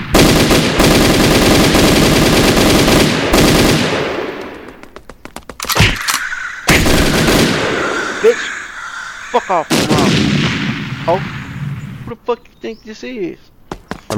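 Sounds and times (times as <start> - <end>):
submachine gun firing in a video game: 0.0 - 4.8, 5.5 - 7.9
speech: 9.4 - 10.3, 11.1 - 11.4, 12.1 - 13.5.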